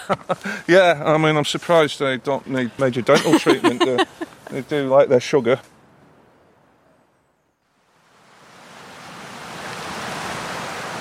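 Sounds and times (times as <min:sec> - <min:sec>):
laughter: 0:00.0 - 0:00.7, 0:03.1 - 0:04.6
rainwater rushing down hillside: 0:00.0 - 0:04.0, 0:07.9 - 0:10.9
speech: 0:00.1 - 0:05.7.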